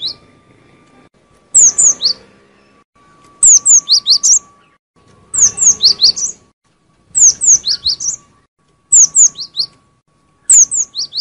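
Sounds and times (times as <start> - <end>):
lovebird lure call for trapping birds: 1.5 - 2.2, 3.4 - 4.7, 5.3 - 6.4, 7.2 - 8.3, 8.9 - 9.8, 10.4 - 11.1.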